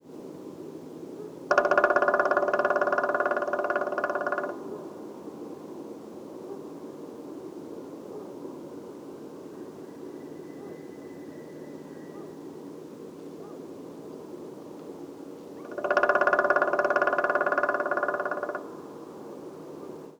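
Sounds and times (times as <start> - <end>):
black woodpecker: 1.5 - 5.0, 15.6 - 19.0.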